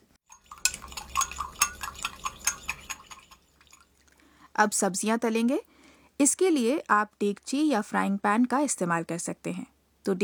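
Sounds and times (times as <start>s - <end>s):
spoon clinking against a bowl while stirring dashi stock, soy sauce and sugar: 0.3s - 3.8s
speech: 4.6s - 10.2s.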